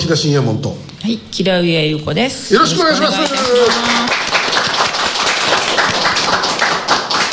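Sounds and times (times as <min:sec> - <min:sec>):
speech: 0:00.1 - 0:04.2
live audience applause: 0:02.8 - 0:07.3.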